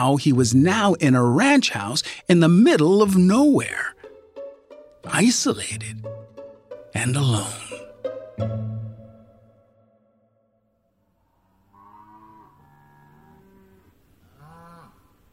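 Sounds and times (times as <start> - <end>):
speech: 0.0 - 4.0, 5.1 - 6.1, 7.0 - 7.8, 8.4 - 8.7
cows lowing in distress at night: 11.2 - 15.1.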